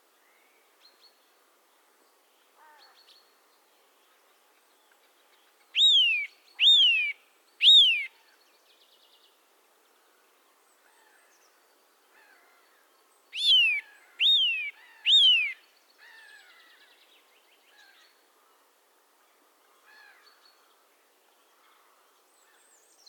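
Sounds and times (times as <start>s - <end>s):
Eurasian nuthatch Sitta europaea descending whistle calls: 5.8s - 8.1s, 13.4s - 15.6s.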